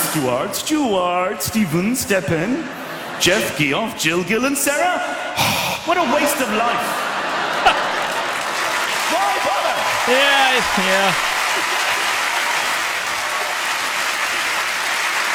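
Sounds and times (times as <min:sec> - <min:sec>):
speech: 0:00.2 - 0:07.1, 0:09.1 - 0:11.3
laughter: 0:02.3 - 0:04.8, 0:05.9 - 0:13.2
crowd applauding: 0:07.2 - 0:15.3
voices calling out: 0:09.3 - 0:11.3.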